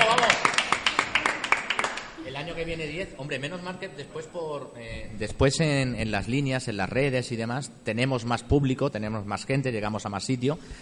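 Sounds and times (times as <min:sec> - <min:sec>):
small live audience clapping: 0:00.0 - 0:02.2
speech: 0:02.6 - 0:10.8.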